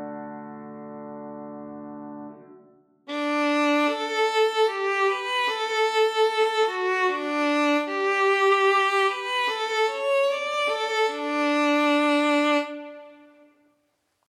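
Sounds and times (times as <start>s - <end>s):
violin in D major: 3.1s - 13.6s.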